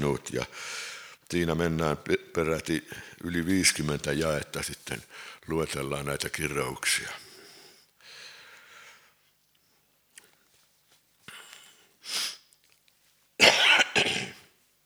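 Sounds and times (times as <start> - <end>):
speech: 0.0 - 7.2
person coughing in a rough hacking fit: 13.4 - 14.5.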